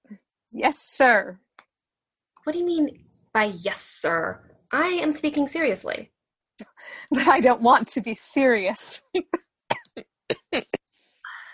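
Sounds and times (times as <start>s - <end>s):
speech: 0.6s - 1.4s, 2.4s - 6.1s, 6.8s - 9.4s
dry coughs: 9.7s - 10.8s.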